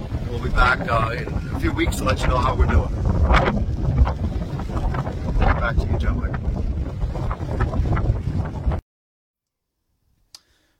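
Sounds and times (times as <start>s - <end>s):
loud blustery wind buffeting an outdoor microphone: 0.0s - 8.8s
speech: 0.3s - 4.3s, 5.6s - 6.6s.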